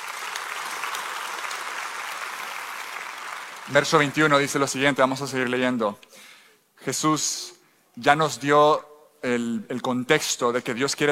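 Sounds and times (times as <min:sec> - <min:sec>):
audience applauding: 0:00.0 - 0:04.8
speech: 0:03.7 - 0:11.1.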